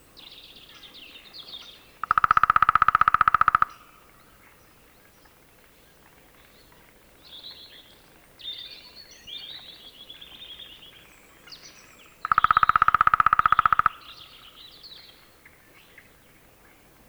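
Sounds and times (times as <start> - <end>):
other birds giving high twittering: 0.2 - 16.9
Lesser spotted woodpecker drumming: 2.0 - 4.2, 12.2 - 14.6.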